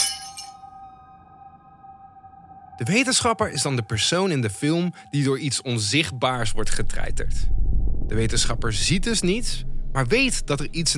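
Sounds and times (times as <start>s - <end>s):
glass lamp bursting and shattering: 0.0s - 0.6s
speech: 2.8s - 10.9s.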